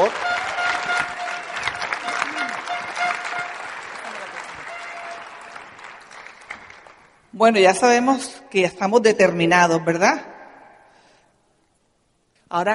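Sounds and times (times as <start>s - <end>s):
whistles and cheers: 0.0s - 5.8s
audience applause: 0.0s - 7.2s
speech: 7.4s - 10.3s, 12.5s - 12.7s.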